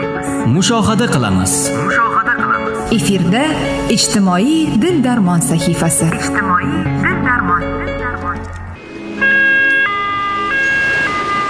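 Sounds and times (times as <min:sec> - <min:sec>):
speech: 0:00.5 - 0:08.6
ambulance siren wailing in a two-tone wail: 0:08.8 - 0:11.4.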